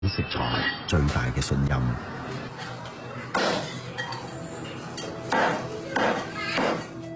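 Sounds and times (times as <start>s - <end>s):
speech: 0.2s - 2.7s
cleaver chopping a gutted pigeon on a board: 5.3s - 6.9s.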